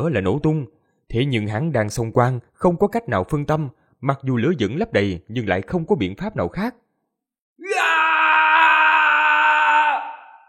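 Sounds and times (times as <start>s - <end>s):
speech: 0.0s - 6.8s
man howling in rage: 7.6s - 10.4s.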